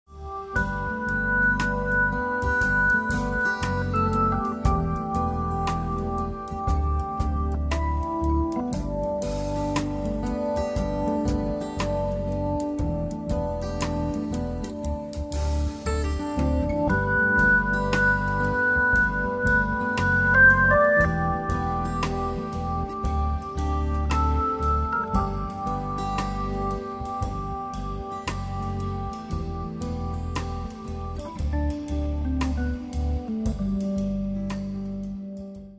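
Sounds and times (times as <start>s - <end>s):
organ trio playing: 0.3s - 34.4s.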